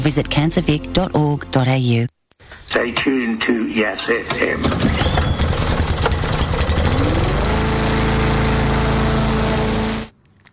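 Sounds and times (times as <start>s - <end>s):
speech: 0.0s - 5.3s
petrol lawn mower engine sputtering and running: 4.3s - 10.1s.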